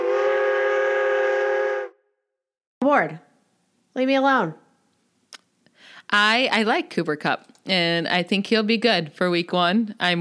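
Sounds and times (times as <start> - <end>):
train whistle: 0.0 - 2.2
speech: 2.8 - 3.2, 4.0 - 4.6, 6.1 - 10.1.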